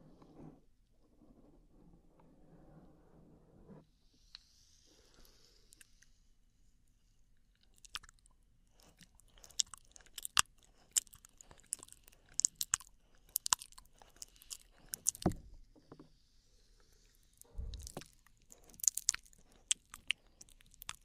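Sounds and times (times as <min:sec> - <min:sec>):
quiet wet mouth sounds with clicks and crackles: 0:07.7 - 0:08.2, 0:08.8 - 0:15.4, 0:17.4 - 0:21.0.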